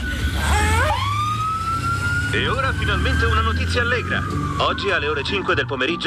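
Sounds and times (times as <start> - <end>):
ambulance siren wailing: 0.0 - 6.0
speech: 2.3 - 6.0.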